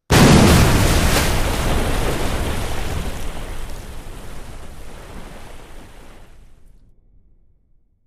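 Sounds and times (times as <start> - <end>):
explosion water splash: 0.1 - 6.4.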